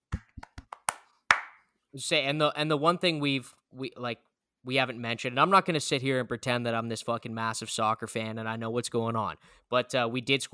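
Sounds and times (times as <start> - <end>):
hand claps as applause for a team: 0.0 - 1.6
speech: 2.0 - 10.5.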